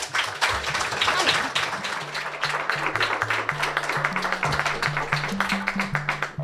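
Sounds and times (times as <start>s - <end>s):
audience applauding a storyteller at a live storytelling event: 0.0s - 6.4s
music with a low stepping bass line: 2.7s - 6.4s.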